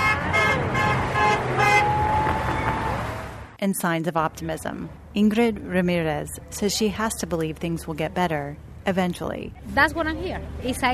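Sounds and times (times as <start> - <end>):
car horns honking in support on a street: 0.0 - 3.3
steady street traffic rumble: 0.0 - 10.9
speech: 3.6 - 10.9.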